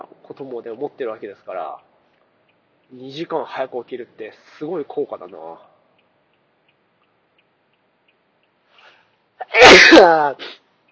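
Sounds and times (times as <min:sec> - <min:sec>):
faint soft ticking: 0:00.0 - 0:09.4, 0:10.6 - 0:10.9
speech: 0:00.3 - 0:01.9, 0:02.9 - 0:05.7, 0:09.8 - 0:10.6
loud sneeze after a sharp inhale: 0:09.4 - 0:10.6.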